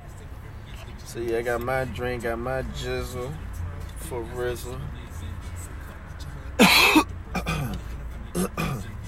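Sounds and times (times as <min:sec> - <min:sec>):
speech: 0:01.1 - 0:03.5, 0:04.1 - 0:05.0
loud harsh cough: 0:06.6 - 0:07.8, 0:08.3 - 0:08.9
rough throat-clearing hacks: 0:06.6 - 0:08.9.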